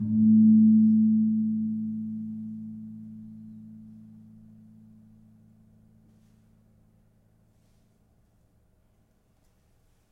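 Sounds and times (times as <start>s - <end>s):
kempul gamelan gong: 0.0s - 5.2s.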